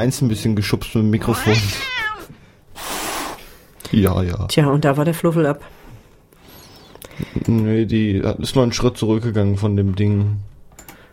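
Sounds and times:
speech: 0:00.0 - 0:02.0, 0:03.9 - 0:05.8, 0:07.3 - 0:10.5
cat meowing: 0:01.2 - 0:02.4
cat breathy hissing exhale: 0:02.2 - 0:03.7.

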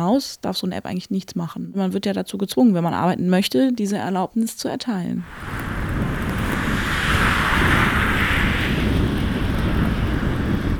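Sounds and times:
speech: 0:00.0 - 0:06.2
strong wind buffeting the microphone: 0:05.2 - 0:10.7.

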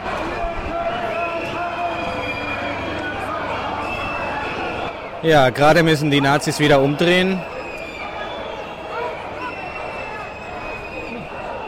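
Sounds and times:
large outdoor crowd roaring and cheering as marchers turn around: 0:00.0 - 0:11.6
sustained shrill whistles from crowd: 0:00.8 - 0:03.1, 0:03.7 - 0:05.0, 0:07.4 - 0:11.6
speech: 0:05.2 - 0:07.5.

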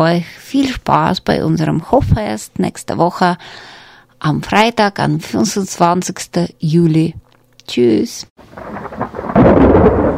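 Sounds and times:
speech: 0:00.0 - 0:09.0
heavy rain pouring down: 0:08.4 - 0:10.1
thunder rumbling: 0:08.4 - 0:10.1.

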